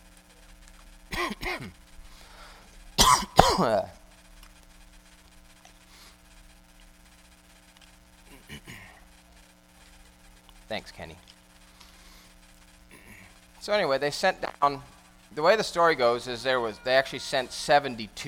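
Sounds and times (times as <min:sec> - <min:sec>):
low steady hum: 0:00.0 - 0:18.2
person coughing from a tickle in the throat: 0:01.1 - 0:01.8, 0:03.0 - 0:03.9, 0:08.3 - 0:09.0
throat clearing from a tickle in the throat: 0:01.1 - 0:01.8, 0:08.3 - 0:09.0, 0:12.9 - 0:13.4
speech: 0:01.4 - 0:01.8, 0:03.6 - 0:04.0, 0:10.7 - 0:11.3, 0:13.6 - 0:18.2.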